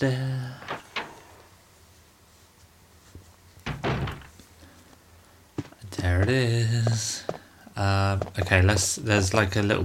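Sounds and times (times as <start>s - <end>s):
speech: 0.0s - 0.3s, 6.1s - 9.8s
quiet ambience: 0.0s - 9.8s
door opening thunk in a zombie survival-horror video game: 3.6s - 4.4s.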